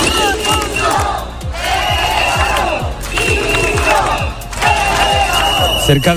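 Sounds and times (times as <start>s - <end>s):
crowd of protesters chanting and shouting in a city square: 0.0s - 6.1s
steady rhythmic thumping beat: 0.0s - 6.1s.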